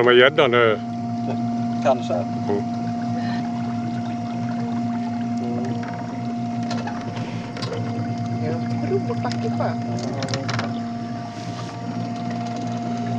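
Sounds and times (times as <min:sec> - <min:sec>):
speech: 0:00.0 - 0:02.8, 0:08.9 - 0:10.6
boat motor running slowly: 0:00.0 - 0:13.1
faint water splashes: 0:00.8 - 0:13.1
creaks: 0:05.6 - 0:12.9.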